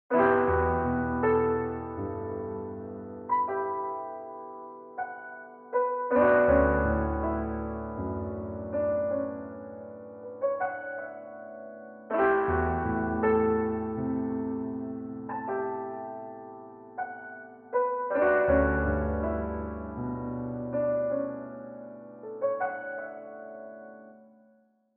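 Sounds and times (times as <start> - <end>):
trip hop piano: 0.1 - 24.5.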